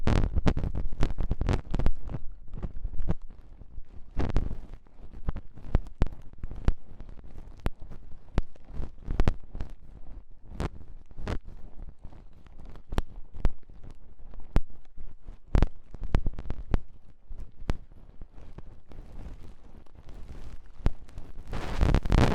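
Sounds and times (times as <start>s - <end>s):
scratchy ear cleaning crackling, picking and tapping: 0.0s - 22.3s.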